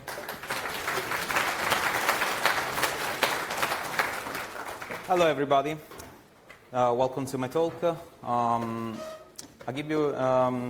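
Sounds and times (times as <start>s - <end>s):
audience applauding with many hands clapping: 0.0s - 5.2s
speech: 5.1s - 5.9s, 6.7s - 10.6s.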